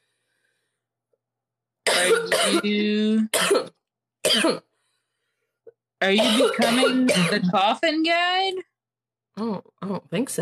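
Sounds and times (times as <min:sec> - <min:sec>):
harsh coughing: 0:01.9 - 0:02.6, 0:03.3 - 0:04.7, 0:06.2 - 0:07.6
speech: 0:02.0 - 0:03.7, 0:04.4 - 0:04.6, 0:06.0 - 0:08.7, 0:09.4 - 0:10.4.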